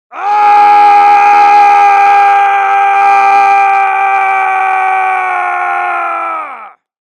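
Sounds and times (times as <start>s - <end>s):
long scream: 0.1s - 6.9s.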